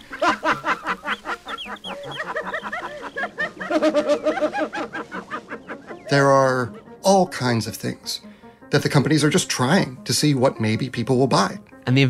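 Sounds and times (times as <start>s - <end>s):
laughter: 0.0s - 6.9s
old recording of birds chirping and clucking: 0.0s - 8.5s
speech: 3.8s - 4.2s, 6.1s - 12.0s.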